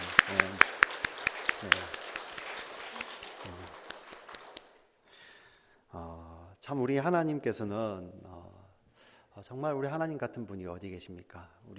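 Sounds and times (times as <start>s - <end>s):
room full of people applauding: 0.0s - 4.8s
speech: 6.7s - 8.3s, 9.4s - 11.7s.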